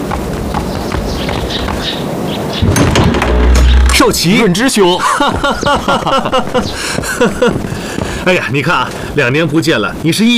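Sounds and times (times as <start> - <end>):
clopping footsteps crossing a room: 0.0 - 9.6
door being pulled open with a creak: 2.6 - 4.5
speech: 4.0 - 10.3
laughter: 4.9 - 7.8.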